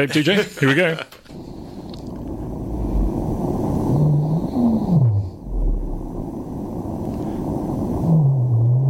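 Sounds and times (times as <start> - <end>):
speech: 0.0 - 1.2
rumbling underwater hiss: 1.2 - 8.8
blue whale moaning calls: 3.9 - 6.1, 8.0 - 8.8.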